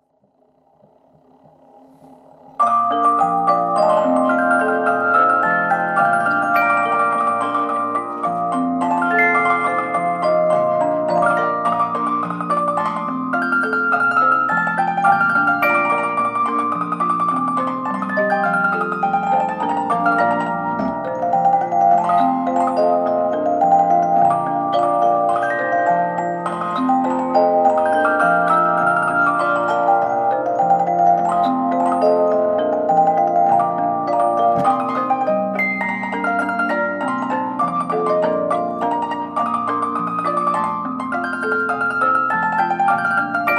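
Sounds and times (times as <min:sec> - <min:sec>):
harp: 0:00.0 - 0:43.5
music box: 0:00.6 - 0:43.5.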